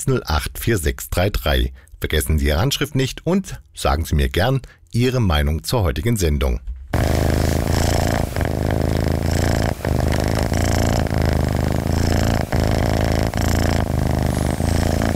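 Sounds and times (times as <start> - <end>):
speech: 0.0 - 7.2
cat purring loudly: 7.0 - 15.1.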